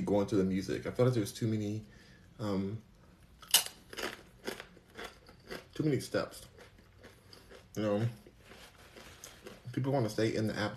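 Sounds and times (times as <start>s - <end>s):
speech: 0.1s - 3.6s, 5.8s - 6.5s, 7.8s - 8.2s, 9.7s - 10.7s
chewing a plant-based tuna sandwich: 3.4s - 9.9s.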